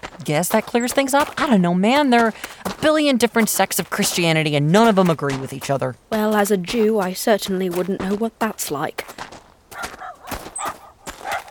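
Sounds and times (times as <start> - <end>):
speech: 0.2 - 9.2
Chihuahuas and elderly pugs barking as guard dogs: 9.7 - 11.5.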